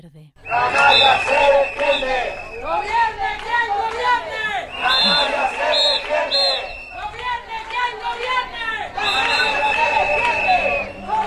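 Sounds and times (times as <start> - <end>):
shrill whistle: 0.4 - 3.1, 4.7 - 7.4, 9.0 - 11.2
large outdoor protest crowd shouting and chanting: 0.4 - 11.2
laughter: 0.5 - 11.2.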